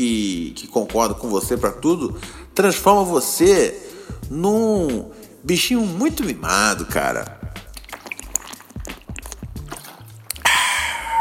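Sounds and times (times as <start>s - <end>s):
speech: 0.0s - 7.4s
mineral water being poured or swallowed: 6.2s - 11.1s
fizzy rush of mineral water: 7.5s - 11.1s.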